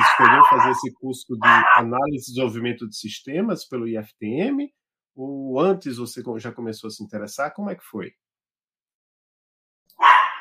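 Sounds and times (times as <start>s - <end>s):
small dog barking: 0.0s - 1.9s, 10.0s - 10.3s
speech: 0.2s - 8.2s.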